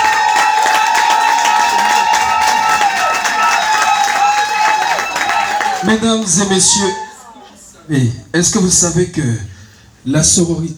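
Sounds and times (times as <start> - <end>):
audience shouts: 0.0 - 7.4
large audience applauding: 0.0 - 7.4
speech: 5.8 - 7.0, 7.9 - 10.7.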